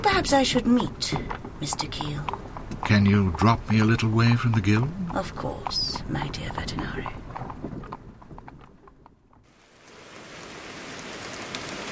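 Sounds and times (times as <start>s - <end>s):
speech: 0.0s - 7.7s
sharp irregular knocks: 0.0s - 9.5s
dense hissing rain downpour: 0.0s - 11.9s.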